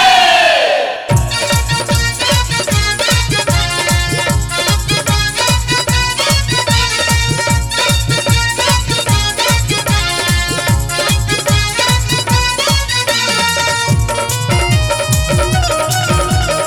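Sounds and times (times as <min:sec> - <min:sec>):
rising shout: 0:00.0 - 0:01.1
crowd chanting a Hindi devotional victory cry in unison: 0:00.0 - 0:02.6
steady pounding drumbeat: 0:01.1 - 0:16.6.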